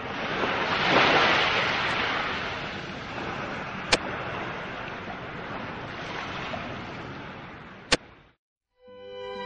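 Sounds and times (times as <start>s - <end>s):
giant ocean wave crashing over a royal dragon boat: 0.0s - 7.6s
wind roaring: 0.0s - 7.9s.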